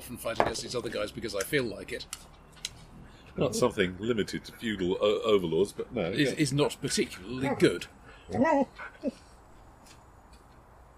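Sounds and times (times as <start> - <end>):
speech: 0.1 - 2.4, 3.4 - 9.3
dog whining: 8.3 - 9.2.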